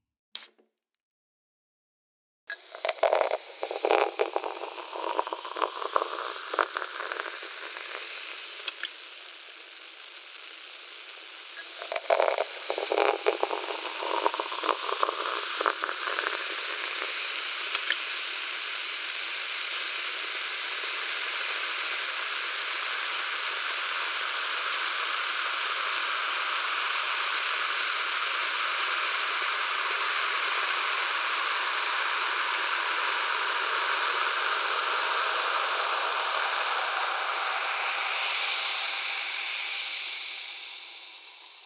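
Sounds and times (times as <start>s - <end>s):
carbonated water being poured, fizzing: 2.5s - 41.6s
crackling bubble pops of carbonated water: 2.6s - 8.0s, 11.8s - 17.1s.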